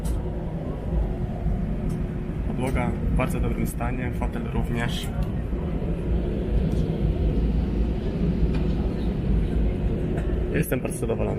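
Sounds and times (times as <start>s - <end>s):
low engine rumble inside an airplane cabin: 0.0s - 11.3s
speech: 2.6s - 5.3s, 10.6s - 11.3s.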